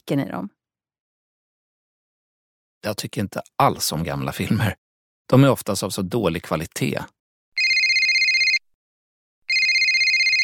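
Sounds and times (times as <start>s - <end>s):
speech: 0.1s - 0.6s, 2.8s - 7.2s
phone ringtone with a trilling bell-like warble: 7.6s - 8.6s, 9.5s - 10.4s.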